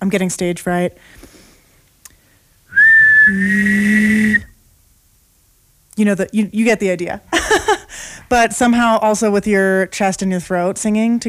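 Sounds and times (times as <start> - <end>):
speech: 0.0 - 1.3, 3.3 - 4.5, 6.0 - 11.2
person whistling a steady high tone: 2.7 - 4.6
person humming a low note: 2.8 - 4.5.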